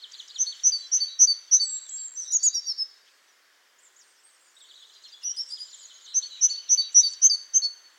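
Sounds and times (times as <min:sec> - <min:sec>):
great tit Parus major giving high sharp notes: 0:00.1 - 0:02.9, 0:05.2 - 0:07.9.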